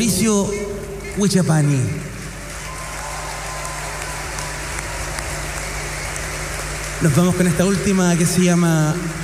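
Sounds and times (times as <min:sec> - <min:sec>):
speech: 0:00.0 - 0:02.1, 0:07.0 - 0:09.2
festival crowd applauding a performer: 0:02.2 - 0:09.2.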